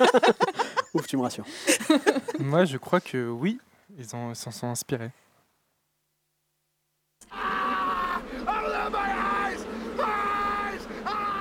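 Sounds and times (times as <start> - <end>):
laughter: 0.0 - 2.6, 7.2 - 9.2
speech: 0.0 - 5.3
several voices screaming high-pitched for a correct quiz answer: 7.2 - 11.3.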